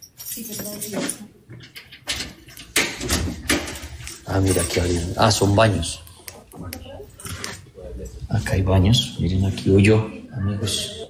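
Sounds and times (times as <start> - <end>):
keys fumbling in the lock of a cellar door: 0.0 - 5.4
speech: 0.4 - 1.8, 4.3 - 6.0, 8.4 - 10.9
cellar door rattling open: 2.0 - 4.1.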